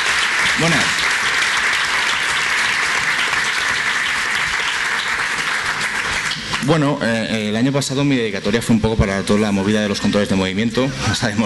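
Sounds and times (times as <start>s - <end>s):
audience applause welcoming a guest: 0.0s - 6.9s
speech: 0.6s - 1.0s, 6.7s - 11.4s.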